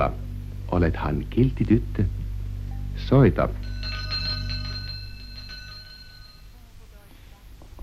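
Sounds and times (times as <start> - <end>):
speech: 0.0 - 2.2, 3.0 - 3.7
low steady rumble: 0.0 - 7.8
small bell ringing in a rapid rattling trill: 3.6 - 6.8.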